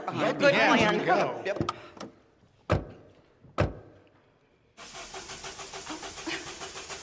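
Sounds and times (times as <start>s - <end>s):
speech: 0.1s - 1.9s
car doors closing: 2.7s - 4.0s
car engine cranking, failing to start: 4.8s - 7.0s.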